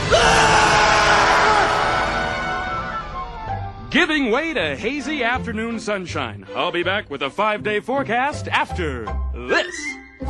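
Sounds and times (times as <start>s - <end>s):
crowd screaming and yelling: 0.0s - 3.2s
speech: 4.0s - 10.2s.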